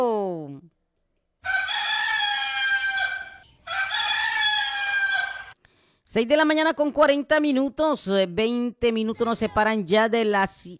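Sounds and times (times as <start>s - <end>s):
rooster crowing: 1.4s - 5.6s
speech: 6.1s - 10.7s.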